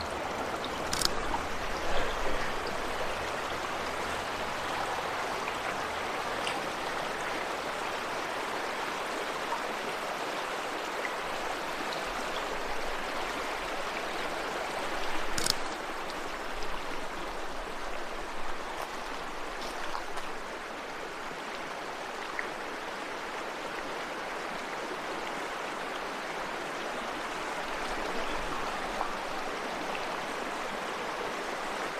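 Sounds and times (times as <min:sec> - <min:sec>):
Laurel Creek rushing past its banks in the Great Smoky Mountains Tennessee: 0:00.0 - 0:31.9
sharp clicks: 0:00.9 - 0:01.2, 0:15.3 - 0:15.8.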